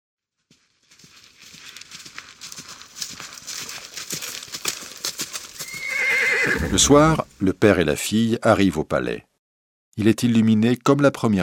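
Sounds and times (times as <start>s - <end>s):
horse hooves clip-clopping at a brisk walking pace: 0.3s - 7.4s
speech: 6.7s - 9.3s, 10.0s - 11.4s.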